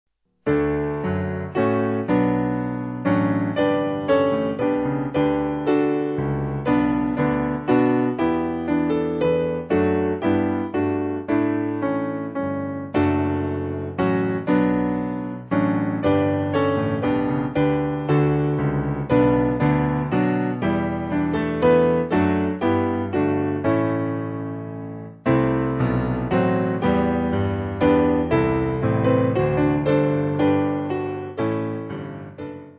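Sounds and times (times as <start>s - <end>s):
piano: 0.4s - 32.7s.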